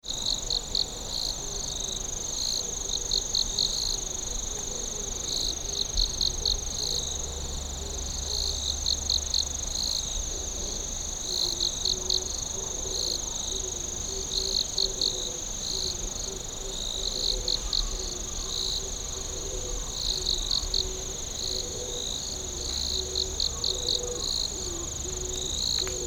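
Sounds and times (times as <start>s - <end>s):
insect song steady high whine: 0.2s - 26.0s.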